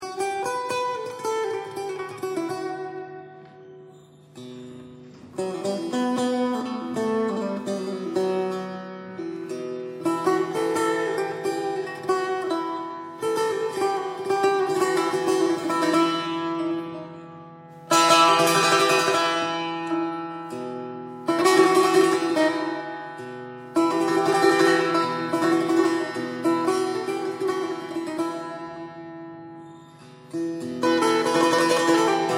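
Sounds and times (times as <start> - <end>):
setar: 0.0 - 32.3.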